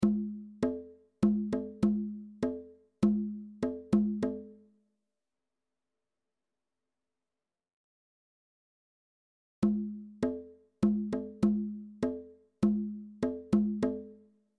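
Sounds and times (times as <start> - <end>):
bongos: 0.0 - 4.6, 9.6 - 14.2.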